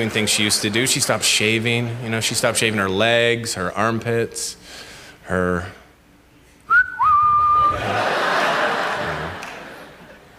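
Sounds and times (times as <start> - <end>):
speech: 0.0 - 5.8
audience member whistling in a crowd: 6.7 - 7.8
audience laughter: 7.6 - 10.3.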